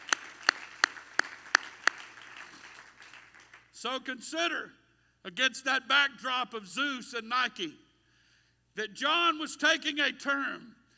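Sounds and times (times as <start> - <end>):
hand claps in praise during a sermon: 0.0 - 3.7
speech: 3.8 - 7.8, 8.8 - 10.8.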